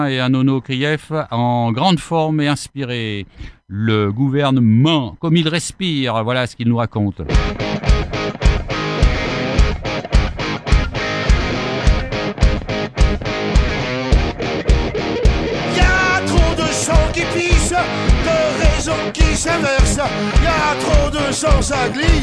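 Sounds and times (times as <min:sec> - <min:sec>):
speech: 0:00.0 - 0:07.8, 0:21.3 - 0:22.2
heavily distorted electric guitars in a French hard rock track: 0:07.3 - 0:22.2
steady pounding drum beat: 0:07.3 - 0:22.2.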